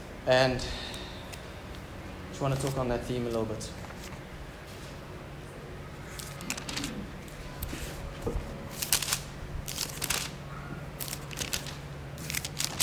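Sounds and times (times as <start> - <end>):
low hum: 0.0 - 12.8
speech: 0.2 - 0.8, 2.4 - 3.9
thin pages of a paper Bible being turned: 2.6 - 4.9, 6.1 - 8.0, 8.7 - 10.4, 11.0 - 12.8.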